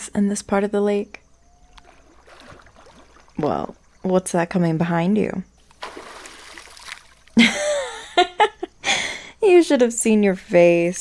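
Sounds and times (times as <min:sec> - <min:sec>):
speech: 0:00.2 - 0:01.2, 0:03.4 - 0:05.5, 0:09.5 - 0:10.9
water splashing in a lake: 0:01.4 - 0:04.7, 0:05.6 - 0:07.4
laughter: 0:07.4 - 0:08.8.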